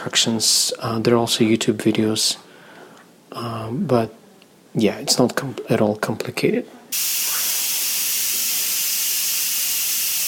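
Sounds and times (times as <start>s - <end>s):
speech: 0.0s - 2.5s, 3.4s - 7.5s
steam venting from an appliance: 6.9s - 10.2s.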